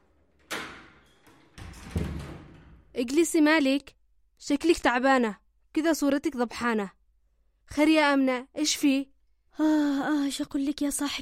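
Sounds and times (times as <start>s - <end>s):
door being opened: 0.0s - 3.0s
speech: 3.0s - 7.0s, 7.7s - 11.1s.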